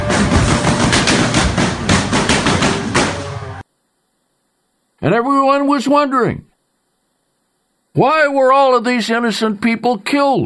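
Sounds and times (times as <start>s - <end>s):
rapid gunfire at a rock concert: 0.1s - 3.3s
speech: 5.0s - 6.5s, 7.9s - 10.4s.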